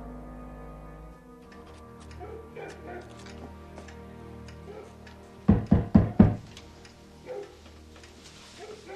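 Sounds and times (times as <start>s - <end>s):
firm knocks on a wooden door: 5.5s - 6.5s
faint shuffling: 8.1s - 8.9s.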